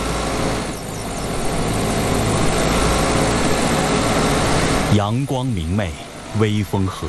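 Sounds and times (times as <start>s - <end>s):
motor engine droning outdoors on a meadow: 0.0s - 7.0s
speech: 4.9s - 7.0s.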